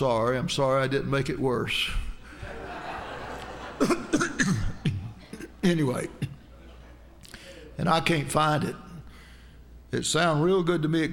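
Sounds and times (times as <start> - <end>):
speech: 0.0 - 2.1, 3.8 - 4.6, 5.6 - 6.3, 7.8 - 8.8, 9.9 - 11.1
laughter: 2.3 - 7.8
person coughing: 3.8 - 5.6.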